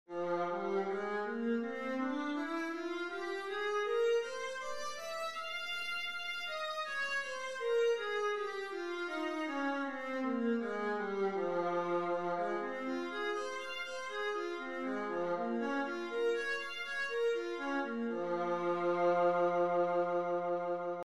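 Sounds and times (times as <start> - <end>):
viola playing F minor scales: 0.1 - 21.0.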